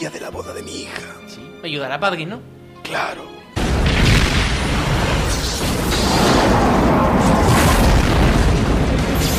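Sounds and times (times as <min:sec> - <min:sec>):
speech: 0:00.0 - 0:03.4
bomb explosion at a wedding: 0:03.6 - 0:09.2.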